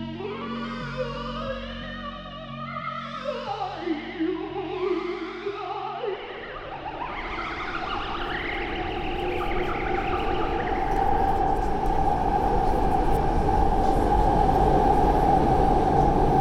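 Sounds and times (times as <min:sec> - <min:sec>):
high wavering whine of subway train: 0:00.1 - 0:16.3
subway train riding: 0:06.6 - 0:16.3.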